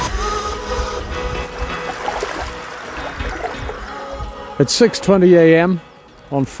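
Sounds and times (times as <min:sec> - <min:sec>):
calm ocean water lapping on a cold March morning: 0:00.1 - 0:04.6
speech: 0:04.6 - 0:06.5.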